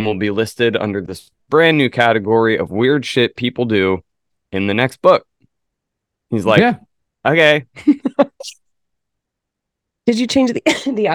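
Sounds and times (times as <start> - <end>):
speech: 0.0 - 5.3, 6.3 - 8.6, 10.1 - 11.1
person coughing into the microphone: 10.7 - 11.0.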